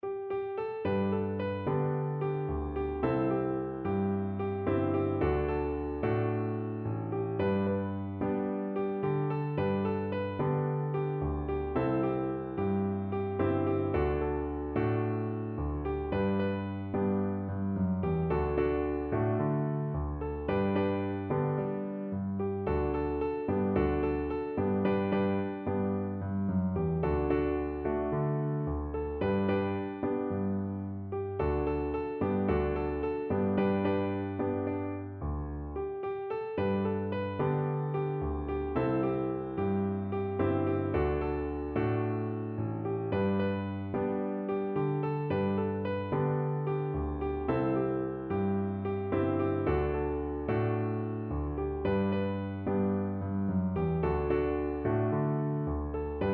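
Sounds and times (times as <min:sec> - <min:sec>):
piano: 0:00.0 - 0:56.3.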